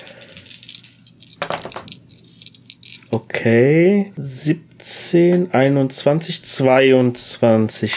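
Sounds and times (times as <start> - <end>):
dice rattling and clattering across a hard tabletop: 0.0 - 3.2
speech: 3.1 - 7.9.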